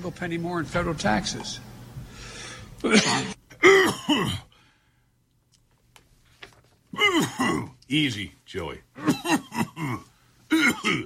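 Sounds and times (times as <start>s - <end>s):
speech: 0.0s - 1.7s, 2.8s - 4.5s, 7.0s - 11.0s
harsh throaty coughs: 2.8s - 4.5s, 7.0s - 7.8s, 9.0s - 11.0s.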